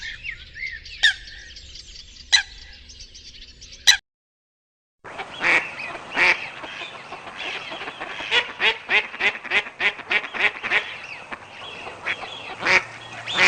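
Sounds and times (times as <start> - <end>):
mallard duck quacking: 5.1 - 13.4.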